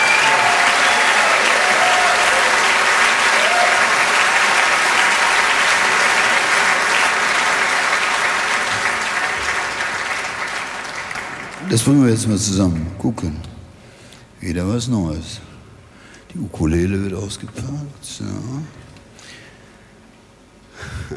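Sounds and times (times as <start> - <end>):
crowd applauding and cheering: 0.0 - 12.2
speech: 11.7 - 13.5, 14.4 - 15.5, 16.4 - 18.9.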